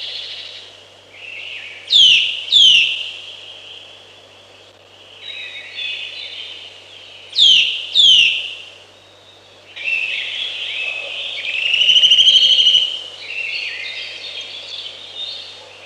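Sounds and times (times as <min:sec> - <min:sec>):
Eurasian nuthatch loud downslurred whistles given in pairs: 0:01.9 - 0:03.1, 0:07.4 - 0:08.6, 0:09.8 - 0:13.9.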